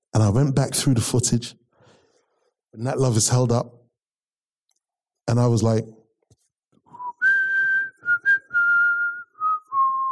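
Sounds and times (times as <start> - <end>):
speech: 0.2 - 1.6, 2.8 - 3.8, 5.3 - 6.0
person whistling a tune alone: 6.9 - 10.0.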